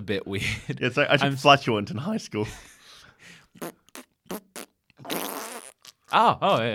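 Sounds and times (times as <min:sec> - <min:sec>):
speech: 0:00.0 - 0:03.8, 0:06.1 - 0:06.7
person imitating farting with wet sputtering bursts: 0:03.6 - 0:06.2.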